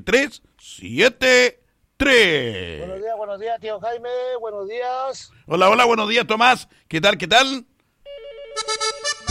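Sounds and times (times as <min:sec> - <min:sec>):
speech: 0:00.0 - 0:07.7, 0:08.6 - 0:09.2
telephone ringing with a bright electronic ringtone: 0:08.1 - 0:09.1.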